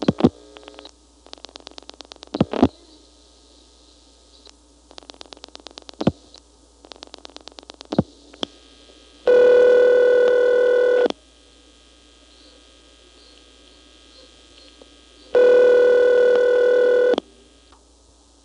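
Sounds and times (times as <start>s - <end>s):
telephone ringback tone: 9.3s - 11.1s, 15.4s - 17.2s.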